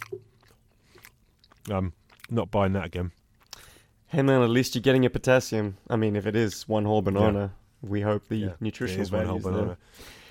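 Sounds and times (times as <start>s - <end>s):
person chewing a tough chewy dog food treat: 0.0s - 2.4s, 3.0s - 4.1s
speech: 1.7s - 3.2s, 4.1s - 10.2s.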